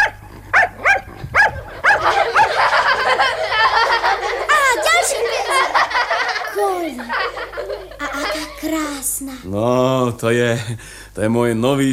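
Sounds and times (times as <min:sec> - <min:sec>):
dog barking while performing circus tricks: 0:00.0 - 0:02.7
laughter: 0:01.6 - 0:08.6
speech: 0:08.6 - 0:11.9.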